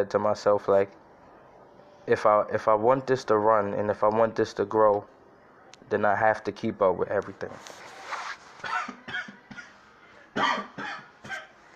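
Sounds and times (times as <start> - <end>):
speech: 0.0 - 1.0, 2.1 - 5.1, 5.8 - 7.9
person having a harsh coughing fit: 8.6 - 9.8, 10.4 - 11.6.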